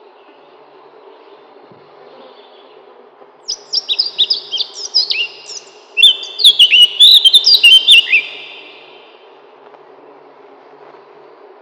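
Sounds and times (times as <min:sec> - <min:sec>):
Eurasian blackcap song: 0:03.5 - 0:09.3.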